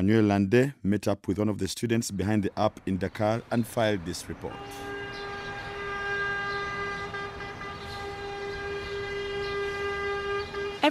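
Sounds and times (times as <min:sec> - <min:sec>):
speech: 0:00.0 - 0:05.3
faint street noise in Dakar: 0:00.0 - 0:10.8
rubbish collection truck's melodic horn blaring in Dakar: 0:04.4 - 0:10.8.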